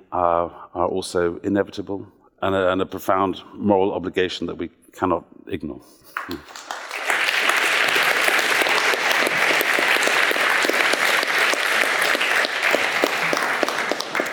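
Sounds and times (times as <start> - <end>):
speech: 0.1 - 6.7
large audience applause: 6.2 - 14.3.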